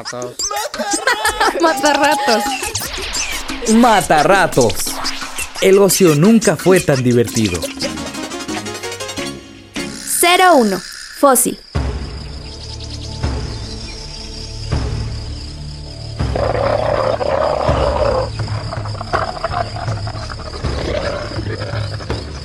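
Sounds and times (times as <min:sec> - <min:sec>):
laughter: 0:00.0 - 0:03.5, 0:06.0 - 0:08.7
speech: 0:00.0 - 0:04.9, 0:05.6 - 0:08.0, 0:10.3 - 0:11.6
chirping insects: 0:00.0 - 0:22.4
deep growling ceratosaurus roar effect: 0:16.2 - 0:22.4.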